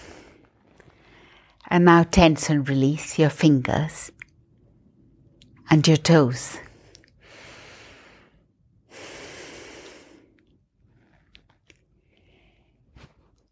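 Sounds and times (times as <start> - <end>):
slow breathing during a guided relaxation exercise: 0.0 - 1.6, 6.6 - 11.3
speech: 1.7 - 4.2, 5.7 - 6.6.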